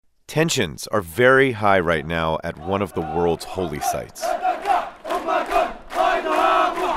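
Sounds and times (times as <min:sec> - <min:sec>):
speech: 0:00.3 - 0:04.5
crowd of protesters shouting outside a holy site: 0:02.6 - 0:06.9.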